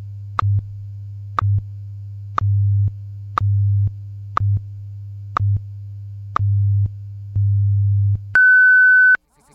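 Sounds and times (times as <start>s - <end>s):
steady low hum of a radio time signal: 0.0s - 9.5s
long high-pitched beep of a radio time signal: 8.4s - 9.2s.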